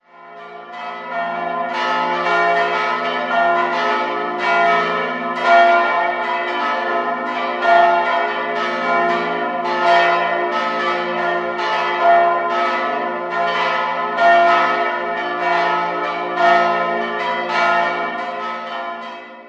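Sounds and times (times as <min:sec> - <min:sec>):
parish church bells ringing: 0:00.0 - 0:19.4.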